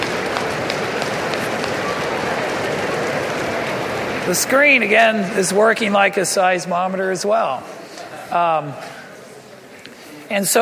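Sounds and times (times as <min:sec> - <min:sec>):
audience stomping their feet: 0:00.0 - 0:04.3
speech: 0:04.3 - 0:09.0, 0:10.3 - 0:10.6.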